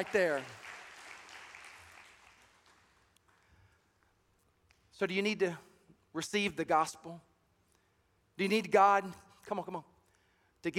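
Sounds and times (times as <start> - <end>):
speech: 0.0 - 0.6, 5.0 - 7.3, 8.4 - 9.9
congregation applauding: 0.0 - 3.1.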